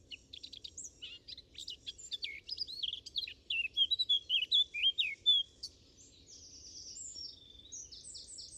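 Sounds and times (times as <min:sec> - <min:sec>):
Eurasian blackcap Sylvia atricapilla singing: 0:00.0 - 0:05.7.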